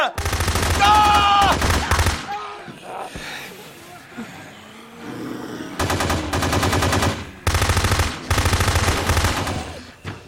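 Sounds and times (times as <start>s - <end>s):
rapid automatic gunfire bursts: 0.0s - 2.3s, 5.8s - 9.9s.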